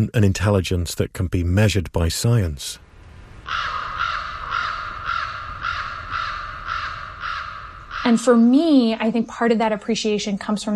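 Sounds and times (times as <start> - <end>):
speech: 0.0 - 2.8, 3.5 - 3.8, 8.1 - 10.7
harsh raspy bird calls: 3.4 - 9.0.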